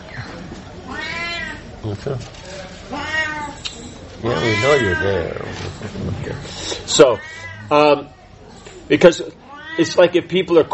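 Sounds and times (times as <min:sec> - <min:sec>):
cat meowing: 0:00.9 - 0:01.6, 0:02.9 - 0:03.6, 0:04.2 - 0:05.4, 0:07.0 - 0:07.9, 0:09.4 - 0:10.0
speech: 0:01.8 - 0:03.0, 0:04.2 - 0:08.2, 0:08.9 - 0:10.7.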